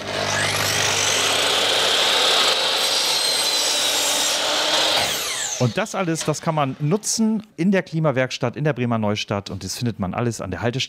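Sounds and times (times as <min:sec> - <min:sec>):
power saw cutting scrap wood for worm compost boxes in Bremen: 0:00.0 - 0:07.2
speech: 0:05.6 - 0:10.8.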